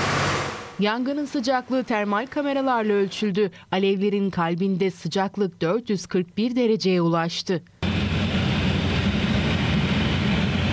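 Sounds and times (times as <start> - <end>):
speech: 0.8 - 7.7
firefighting aircraft engine droning overhead in early morning during forest fire: 7.8 - 10.7.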